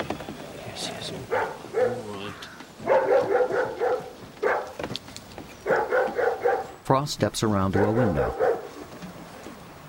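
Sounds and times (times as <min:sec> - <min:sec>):
speech: 0:00.8 - 0:02.5, 0:07.0 - 0:08.5
dog barking at a cottage: 0:01.3 - 0:02.2, 0:02.8 - 0:04.8, 0:05.6 - 0:06.7, 0:07.8 - 0:08.8.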